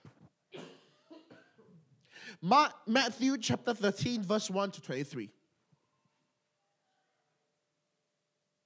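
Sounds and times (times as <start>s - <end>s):
harsh raspy coughs: 0.5s - 2.4s
short breaths: 2.0s - 2.4s
speech: 2.3s - 5.4s.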